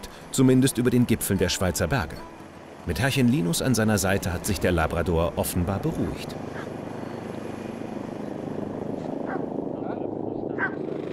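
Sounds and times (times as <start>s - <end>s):
helicopter in flight with rumbling rotor throb: 0.0s - 11.1s
speech: 0.4s - 6.7s.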